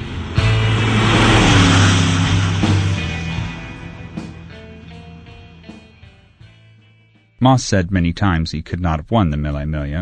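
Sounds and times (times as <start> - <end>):
racing car engine revving and pulling away: 0.0 - 5.9
speech: 7.4 - 10.0.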